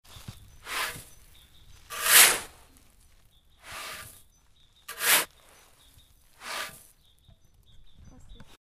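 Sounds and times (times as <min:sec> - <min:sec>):
shoveling sand: 0:00.2 - 0:04.3, 0:04.9 - 0:07.0.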